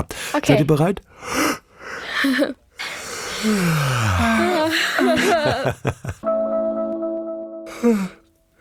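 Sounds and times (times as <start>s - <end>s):
speech: 0.0s - 1.6s, 2.2s - 2.6s, 3.4s - 6.4s, 7.8s - 8.2s
people yawning heartily: 2.0s - 5.8s, 7.7s - 8.2s
laughter: 4.2s - 6.3s.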